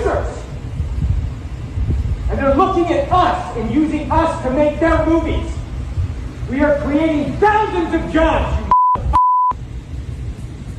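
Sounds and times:
rumbling background: 0:00.0 - 0:10.7
speech: 0:02.5 - 0:05.6, 0:06.5 - 0:08.6
loud steady electronic beeps: 0:08.7 - 0:09.6.

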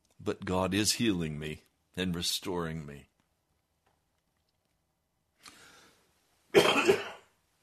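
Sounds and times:
speech: 0:00.2 - 0:03.1
harsh cough from a person in recovery: 0:06.5 - 0:07.4
soft breathy throat clearing: 0:06.6 - 0:07.3.

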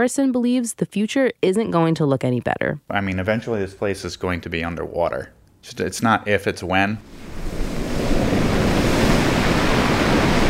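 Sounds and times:
speech: 0:00.0 - 0:07.7
gusting wind buffeting the microphone: 0:07.0 - 0:10.4
wind-driven ocean waves breaking on sandy beach: 0:07.0 - 0:10.4.

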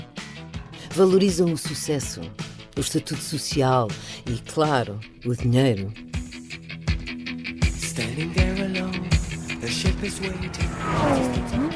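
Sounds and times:
speech: 0:01.0 - 0:06.1, 0:08.0 - 0:11.7
sports car engine revving: 0:07.6 - 0:11.7
tires squealing: 0:09.0 - 0:11.7.

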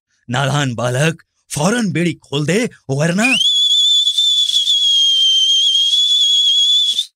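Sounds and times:
speech: 0:00.2 - 0:03.5
loud shrill two-finger whistle: 0:03.2 - 0:07.1.

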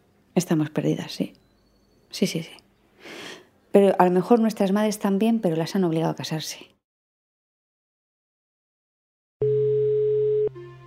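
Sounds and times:
speech: 0:00.4 - 0:01.4, 0:02.1 - 0:06.8
steady electronic telephone ringback tone of an outgoing call: 0:09.4 - 0:10.6.

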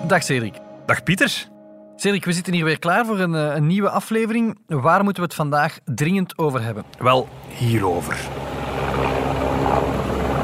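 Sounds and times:
speech: 0:00.1 - 0:09.1
helicopter rotor droning: 0:06.8 - 0:10.4.

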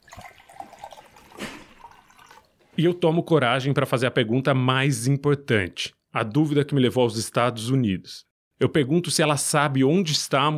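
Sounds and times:
water pouring into a glass: 0:00.0 - 0:02.6
speech: 0:02.8 - 0:10.5.

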